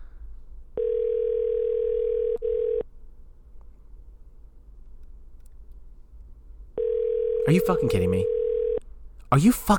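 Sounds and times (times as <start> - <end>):
phone ringback tone through the earpiece: 0.8 - 2.8, 6.8 - 8.8
speech: 7.5 - 8.4, 9.3 - 9.7.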